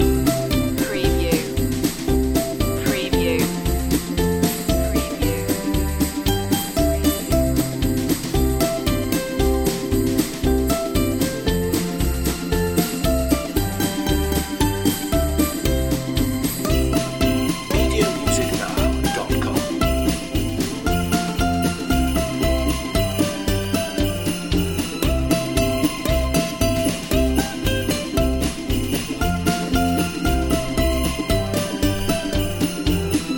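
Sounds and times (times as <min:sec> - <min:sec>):
ukulele loop: 0:00.0 - 0:33.3.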